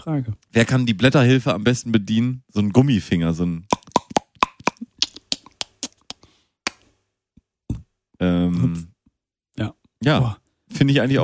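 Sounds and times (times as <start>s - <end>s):
speech: 0.0s - 3.7s, 8.2s - 8.9s, 9.6s - 11.2s
person burping after sparkling water: 3.7s - 4.8s
sharp crisp clicks and plops of sparkling water: 3.7s - 6.2s.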